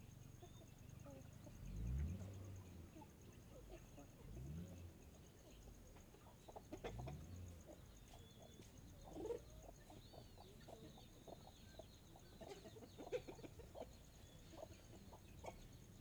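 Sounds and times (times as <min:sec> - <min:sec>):
car: 0:00.0 - 0:16.0
hens clucking and cackling in the late afternoon: 0:09.1 - 0:15.9.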